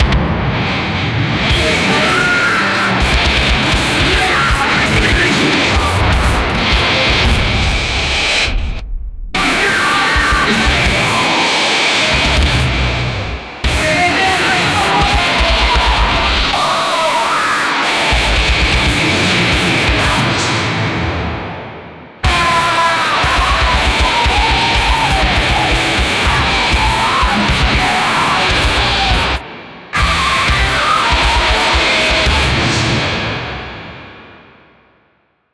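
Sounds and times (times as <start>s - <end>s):
heavy metal track: 0.0s - 8.8s, 9.4s - 34.5s.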